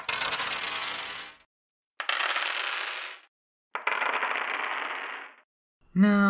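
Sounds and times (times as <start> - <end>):
dice rolling and clattering: 0.0 - 1.4, 2.0 - 5.4
speech: 6.0 - 6.2.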